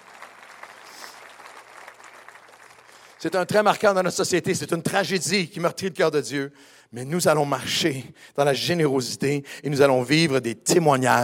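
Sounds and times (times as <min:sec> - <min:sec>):
church congregation clapping: 0:00.0 - 0:04.0
speech: 0:03.2 - 0:11.2.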